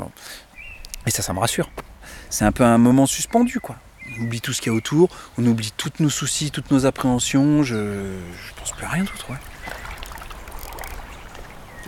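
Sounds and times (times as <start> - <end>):
speech: 1.0 - 9.8
water flowing in a stream: 3.9 - 11.8.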